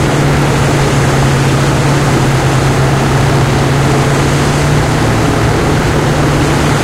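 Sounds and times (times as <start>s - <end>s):
SU-100 tank engine running, interior: 0.0s - 6.8s.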